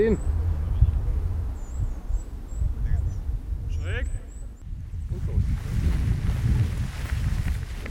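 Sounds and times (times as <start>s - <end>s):
speech: 0.0s - 0.3s
headwind at a paragliding launch buffeting the microphone: 0.0s - 7.8s.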